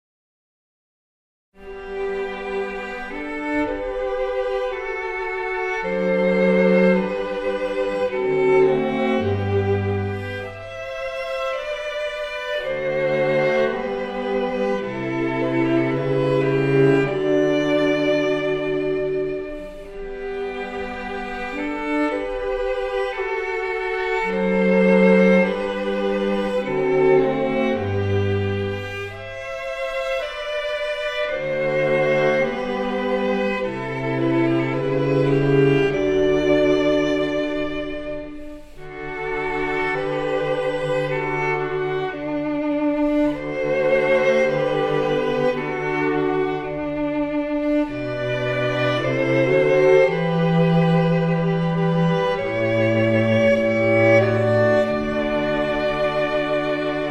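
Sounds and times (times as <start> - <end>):
string quartet chamber ensemble playing: 1.6 - 57.0.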